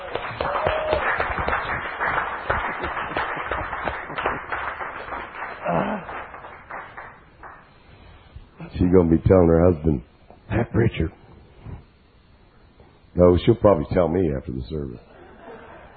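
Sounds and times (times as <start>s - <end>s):
crowd clapping and cheering: 0.0s - 7.8s
speech: 8.9s - 11.2s, 13.2s - 15.1s
laughter: 15.0s - 15.9s.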